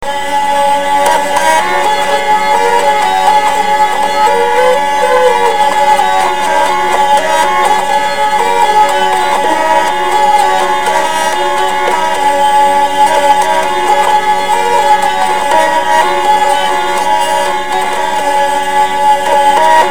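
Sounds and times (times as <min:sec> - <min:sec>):
hurdy-gurdy: 0:00.0 - 0:19.9.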